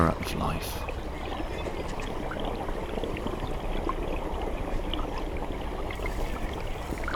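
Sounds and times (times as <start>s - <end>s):
speech: 0.0s - 1.0s
stream water flowing and bubbling: 0.0s - 7.1s.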